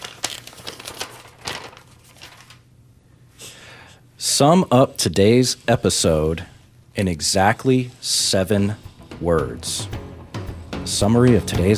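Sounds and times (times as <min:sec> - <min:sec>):
paper envelope being torn open: 0:00.0 - 0:02.6
paper handling noise: 0:00.0 - 0:02.7
speech: 0:04.4 - 0:10.0, 0:10.9 - 0:11.7.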